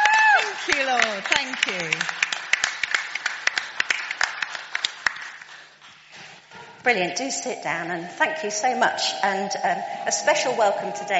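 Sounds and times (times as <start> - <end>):
crowd clapping: 0.0 - 5.8
speech: 0.9 - 2.2, 6.8 - 11.1.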